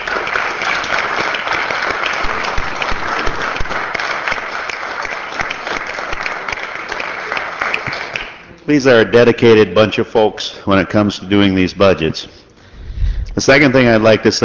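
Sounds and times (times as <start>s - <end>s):
roomful of people clapping at a legislative session: 0.0s - 8.5s, 13.6s - 14.4s
speech: 8.7s - 12.4s, 13.4s - 14.4s.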